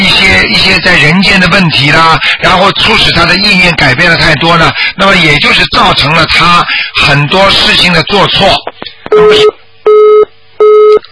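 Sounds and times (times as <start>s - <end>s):
speech: 0.8s - 9.6s
telephone busy signal after a misdialed call: 9.1s - 11.1s.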